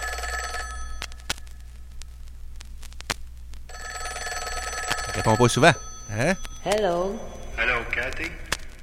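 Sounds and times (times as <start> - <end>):
old-fashioned telephone bell ringing: 0.0 - 1.1, 3.7 - 7.6
speech: 5.2 - 8.4.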